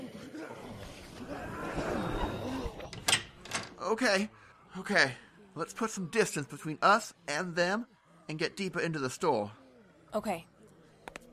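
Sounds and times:
front door creaking open: 1.7 - 3.8
speech: 3.9 - 10.5.

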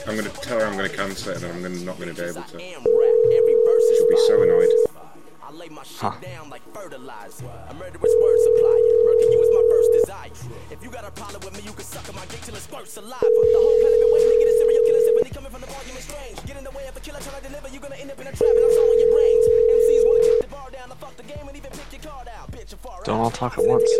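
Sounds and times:
speech: 0.0 - 4.9, 5.6 - 16.0, 23.2 - 23.9
phone line ringback tone during outgoing call: 2.8 - 4.9, 8.0 - 10.1, 13.2 - 15.3, 18.4 - 20.4, 23.6 - 23.9.

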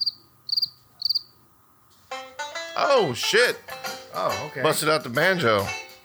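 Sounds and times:
crickets chirping: 0.0 - 2.0
speech: 2.1 - 5.8.

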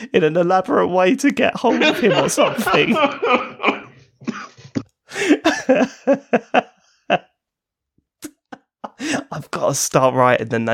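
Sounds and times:
speech: 0.0 - 3.8, 5.7 - 6.6, 9.6 - 10.7
laughter: 1.6 - 7.3
harsh raspy coughing fit: 3.6 - 5.7.

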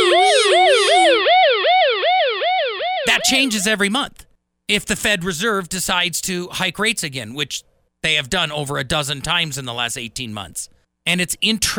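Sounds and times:
second higher wailing siren tone: 0.0 - 1.3, 2.8 - 3.9
emergency siren yelping: 0.0 - 3.9
speech: 3.2 - 11.7.

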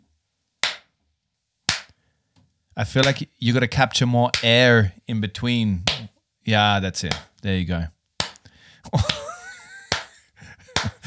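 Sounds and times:
loud hand claps in a reverberant space: 0.6 - 0.9, 1.7 - 1.9, 3.0 - 3.2, 8.2 - 8.4, 9.0 - 10.2, 10.8 - 11.0
speech: 2.8 - 8.0, 8.8 - 9.2
laughter: 8.9 - 11.0.

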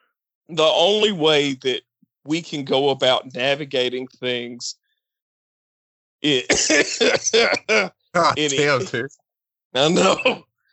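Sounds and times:
speech: 0.5 - 4.8, 6.2 - 10.5
coughing and throat clearing from a tickle in the throat: 6.2 - 9.1, 9.8 - 10.6.

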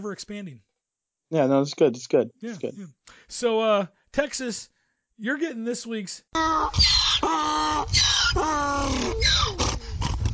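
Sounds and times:
speech: 0.0 - 0.7, 1.3 - 9.8
donkey braying: 6.4 - 10.2.

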